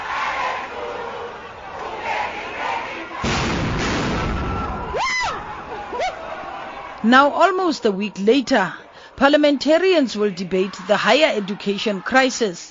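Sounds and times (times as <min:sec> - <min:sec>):
dense crowd noise from students in a parliamentary precinct: 0:00.0 - 0:12.6
stun grenades fired by riot police: 0:03.2 - 0:05.0
speech: 0:07.0 - 0:12.6.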